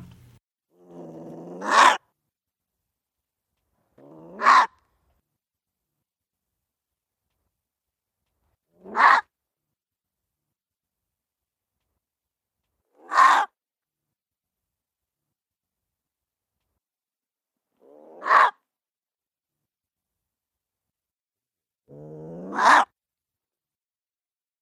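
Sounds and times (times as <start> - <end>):
gray fox growling and barking: 0.7 - 2.2, 3.9 - 4.9, 8.7 - 9.4, 12.8 - 13.6, 17.7 - 18.7, 21.9 - 23.0.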